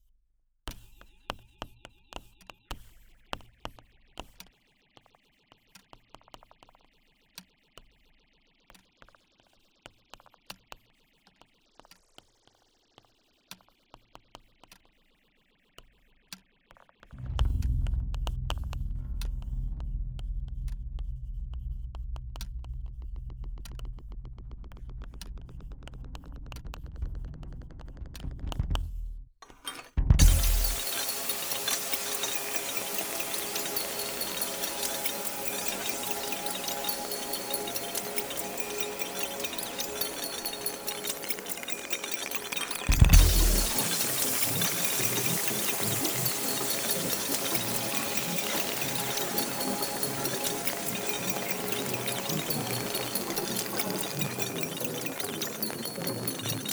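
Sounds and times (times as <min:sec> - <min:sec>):
all music stems of the mix version: 0:17.2 - 0:56.7.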